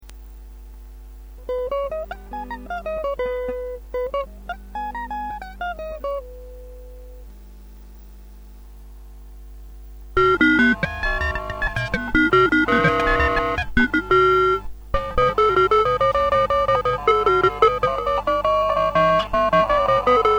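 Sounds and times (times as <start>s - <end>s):
Maestro ring modulator effect: 1.5s - 7.2s, 10.2s - 20.3s.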